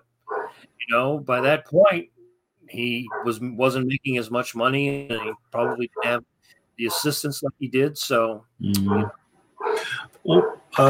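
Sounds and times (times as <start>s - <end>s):
dog barking in the background: 0.3s - 0.6s, 3.1s - 3.4s, 5.1s - 6.2s, 6.8s - 7.2s, 8.8s - 10.8s
speech: 0.8s - 9.2s, 9.8s - 10.8s.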